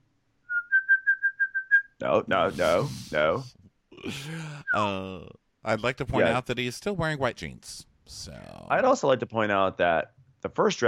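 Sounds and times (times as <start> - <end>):
person practicing a whistle: 0.5 - 1.9
speech: 2.0 - 10.8.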